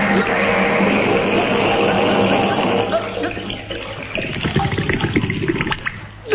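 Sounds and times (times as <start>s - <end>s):
strained bubbling vocal sounds: 0.0s - 6.2s
rushing sloshing water rising over a person's chin: 0.1s - 6.2s
person swallowing and gulping water: 3.0s - 6.2s.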